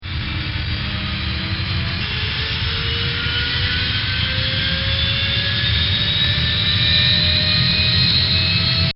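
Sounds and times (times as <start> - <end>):
E-2C Hawkeye aircraft powering up: 0.0 - 8.9.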